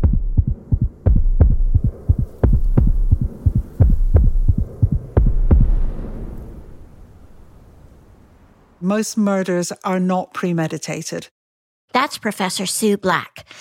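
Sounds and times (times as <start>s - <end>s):
fast heavy heartbeat thumping: 0.0s - 6.3s
speech: 8.9s - 13.6s.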